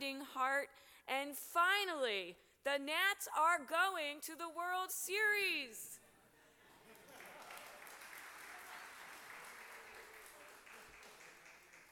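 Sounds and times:
speech: 0.0 - 6.0
audience clapping: 6.8 - 11.9.

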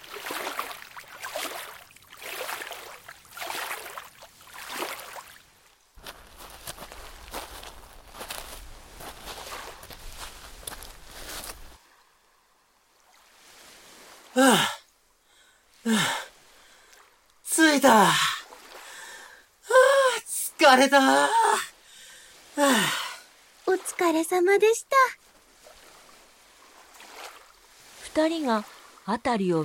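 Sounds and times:
rowboat oar strokes splashing: 0.0 - 11.8, 25.3 - 29.1
gentle waves and lapping water: 0.0 - 29.6
speech: 14.4 - 14.7, 20.7 - 21.6, 24.0 - 25.2, 28.2 - 29.6.

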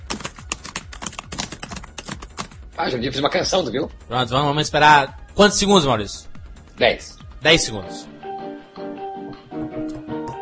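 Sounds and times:
typing an online post on a computer keyboard: 0.0 - 2.6
speech: 2.8 - 8.1.

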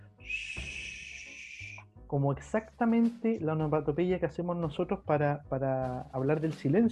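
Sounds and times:
Chilean barn owl hissing screech: 0.2 - 1.8
speech: 2.1 - 6.9.

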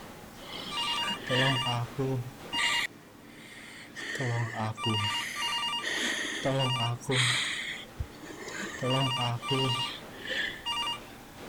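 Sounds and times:
mobile phone bright warbling electronic ringtone: 0.6 - 1.9, 2.5 - 2.9, 4.8 - 7.0, 8.7 - 11.1
speech: 1.3 - 2.4, 4.2 - 5.2, 6.4 - 7.5, 8.8 - 10.0.

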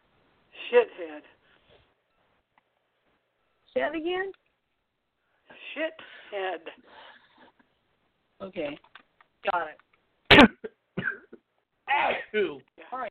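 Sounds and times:
speech: 0.7 - 1.4, 3.8 - 4.4, 5.8 - 7.0, 8.4 - 9.8, 10.4 - 11.3, 11.9 - 13.0
sharp loud sneeze or cough from allergies: 10.3 - 11.3, 11.9 - 12.4.

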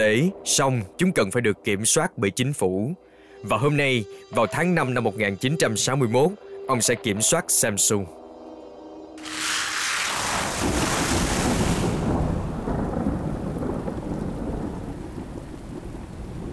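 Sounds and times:
speech: 0.0 - 8.2
heavy summer rain pouring at night: 9.2 - 16.5
thunder rumbling: 9.3 - 16.5.

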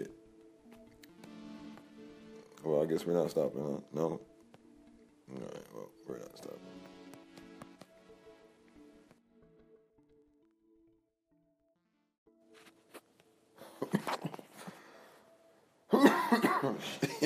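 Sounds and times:
speech: 2.6 - 4.3
person coughing: 13.6 - 14.8, 15.9 - 17.2.

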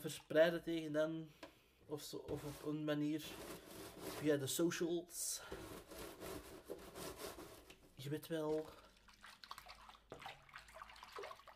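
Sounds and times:
speech: 0.0 - 6.0, 8.0 - 8.8
water splashing in a basin while washing dishes: 8.4 - 11.5.

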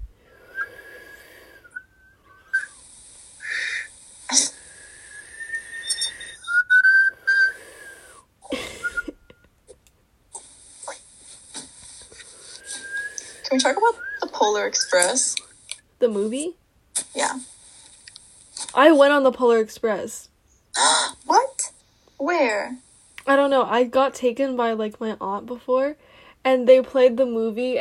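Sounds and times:
person whistling by breathing inwards: 0.4 - 2.9, 3.4 - 9.5, 12.5 - 15.3
speech: 13.6 - 14.0, 14.6 - 16.6, 18.8 - 20.3, 22.3 - 27.7.

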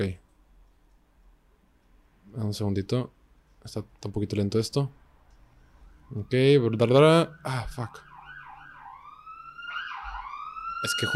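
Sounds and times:
speech: 0.0 - 0.2, 2.4 - 5.0, 6.1 - 8.1, 10.8 - 11.1
police patrol car siren wailing and yelping as the car passes: 5.8 - 11.1.

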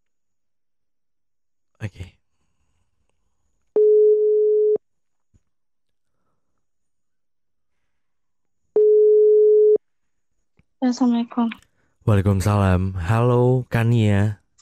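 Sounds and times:
speech: 1.8 - 2.2, 10.8 - 14.6
ringback tone of an outgoing phone call: 3.8 - 4.8, 8.8 - 9.8.

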